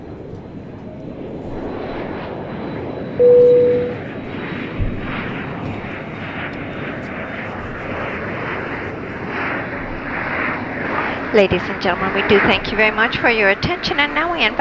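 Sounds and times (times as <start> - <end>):
airplane engine roaring during takeoff: 0.0 - 14.5
speech: 3.2 - 3.5, 11.4 - 14.5
high tone: 3.2 - 4.0.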